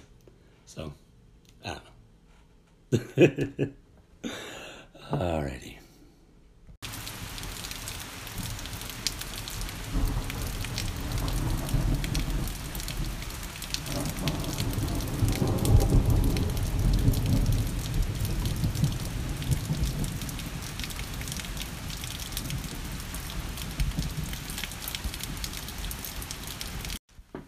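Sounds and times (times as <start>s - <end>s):
speech: 0.7s - 1.0s, 1.6s - 1.9s, 2.9s - 4.4s, 5.1s - 5.8s
heavy rain pouring at a cottage: 6.8s - 27.0s
deep rumble of thunder: 6.9s - 27.0s.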